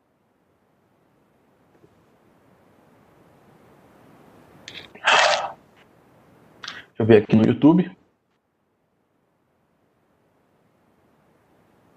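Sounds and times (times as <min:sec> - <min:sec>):
person sipping water with a slurp: 0:04.7 - 0:05.6
speech: 0:07.0 - 0:08.0.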